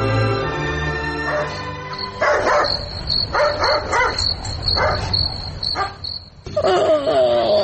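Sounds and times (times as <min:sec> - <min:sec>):
crickets chirping: 0:00.2 - 0:07.5
house dog barking at night: 0:01.2 - 0:05.2, 0:05.8 - 0:06.0.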